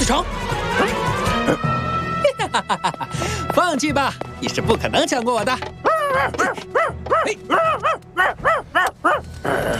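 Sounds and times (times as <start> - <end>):
speech: 0.1 - 0.9, 1.5 - 1.7, 2.5 - 2.9, 3.6 - 9.7
laughter: 2.2 - 3.5
small dog yapping with high-pitched barks: 6.4 - 9.2.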